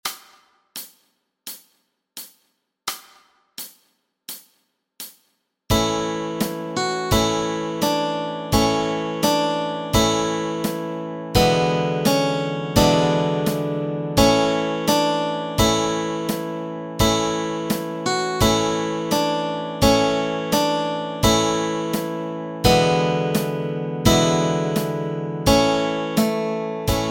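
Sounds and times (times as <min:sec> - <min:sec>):
melody and chords: 0:05.7 - 0:27.0.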